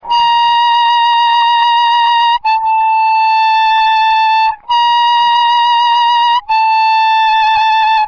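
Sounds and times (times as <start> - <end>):
diatonic harmonica overblow vibrato: 0.0 - 8.0.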